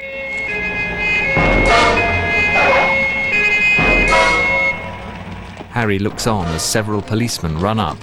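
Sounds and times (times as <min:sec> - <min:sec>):
police car siren wailing: 0:00.0 - 0:05.6
police car screeching to a halt: 0:00.0 - 0:08.0
speech: 0:05.8 - 0:08.0.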